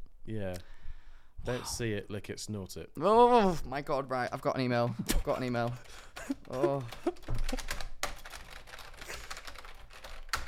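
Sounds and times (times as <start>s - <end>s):
speech: 0.3s - 0.8s, 1.4s - 7.6s
computer keyboard typing with a typewriter-like click: 5.2s - 10.4s.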